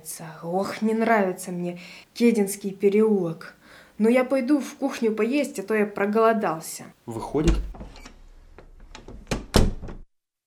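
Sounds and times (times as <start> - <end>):
speech: 0.0 - 8.0
dull knocks and thumps: 7.4 - 10.1.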